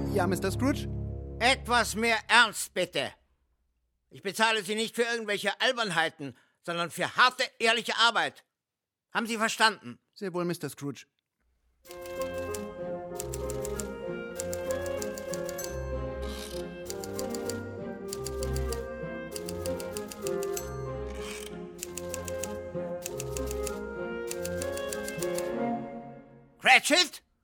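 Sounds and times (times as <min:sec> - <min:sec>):
speech: 0:00.2 - 0:03.2, 0:04.1 - 0:08.5, 0:09.1 - 0:11.1, 0:11.8 - 0:12.4, 0:26.6 - 0:27.2
typewriter keys clattering in a clerk's office: 0:11.9 - 0:15.8, 0:16.4 - 0:25.5.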